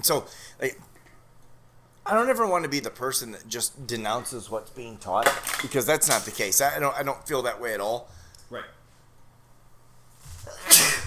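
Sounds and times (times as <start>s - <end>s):
speech: 0.0s - 0.9s, 2.1s - 8.8s
sneeze: 10.5s - 11.0s.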